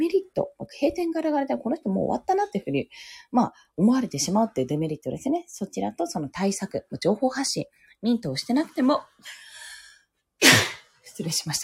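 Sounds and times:
speech: 0:00.4 - 0:09.5, 0:10.4 - 0:11.6
sneeze: 0:10.4 - 0:10.9.

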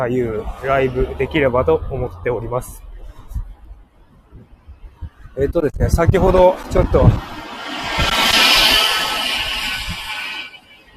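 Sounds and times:
speech: 0:00.0 - 0:02.9, 0:05.4 - 0:07.3
loud car passing by: 0:00.0 - 0:03.1, 0:06.3 - 0:10.9.

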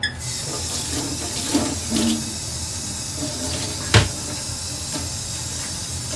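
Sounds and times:
running water from a kitchen tap filling the sink: 0:00.0 - 0:06.1.

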